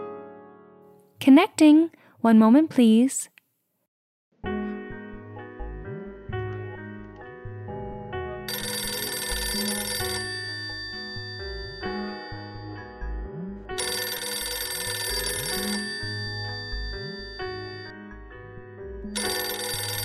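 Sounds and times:
speech: 1.2 - 3.3
telephone ringing with a bright melodic electronic ringtone: 8.5 - 18.2, 19.0 - 20.0.

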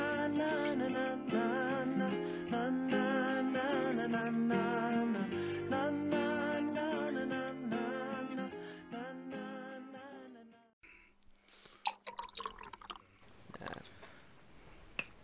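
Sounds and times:
music: 0.0 - 10.7
beer poured into a glass with gurgling splashes and fizzing hiss: 11.5 - 15.2.

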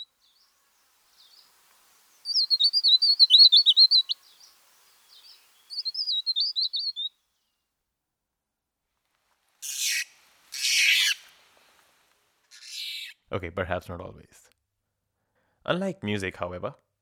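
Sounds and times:
harsh raspy bird calls: 0.0 - 0.4, 1.2 - 7.1, 9.6 - 11.3, 12.5 - 13.3
bird warbling chirpy phrases: 0.0 - 7.1, 9.6 - 11.3
speech: 13.3 - 14.5, 15.7 - 16.8.

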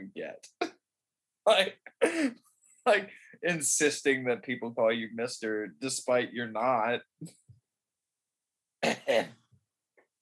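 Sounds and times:
speech: 1.5 - 7.4, 8.8 - 9.4
throat clearing: 8.8 - 9.4
coughing: 8.8 - 9.5.

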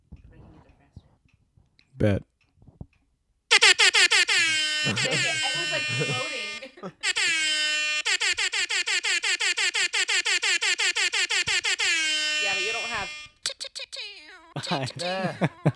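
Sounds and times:
speech: 2.0 - 2.3, 14.7 - 15.7
air horn blasts from a phone app: 3.5 - 13.6
people giggling: 4.3 - 7.7, 14.2 - 15.7.

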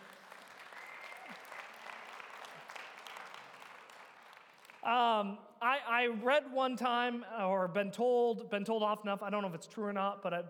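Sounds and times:
audience applause: 0.0 - 4.8
speech: 4.8 - 10.4.

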